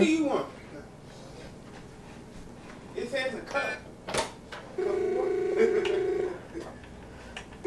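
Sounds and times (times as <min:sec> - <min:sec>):
speech: 0:00.0 - 0:00.6, 0:03.0 - 0:03.9
telephone ringing with an electronic tone: 0:04.8 - 0:06.5.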